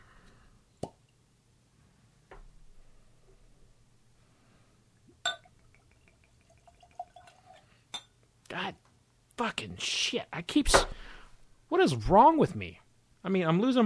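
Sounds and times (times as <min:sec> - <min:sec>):
small drips of spilled bourbon: 0:04.9 - 0:07.8
wet plop of spilled bourbon: 0:05.0 - 0:07.6
glassy clinks of bourbon being poured: 0:05.2 - 0:08.2
speech: 0:09.4 - 0:11.0, 0:11.7 - 0:13.8.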